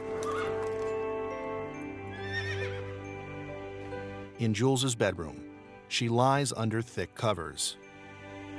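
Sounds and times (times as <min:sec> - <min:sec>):
horse whinnying outside a castle on a snow-covered lawn: 0:00.2 - 0:00.7, 0:02.1 - 0:02.9
speech: 0:04.4 - 0:07.8.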